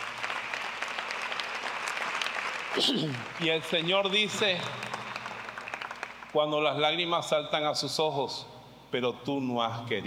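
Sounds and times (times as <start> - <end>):
congregation applauding: 0.0 - 7.0
speech: 2.8 - 4.9, 6.3 - 10.0.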